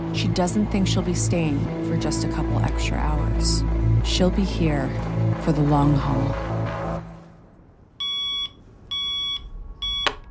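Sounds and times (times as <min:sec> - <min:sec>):
speech: 0:00.2 - 0:06.5
alarm clock beeping: 0:08.0 - 0:10.1.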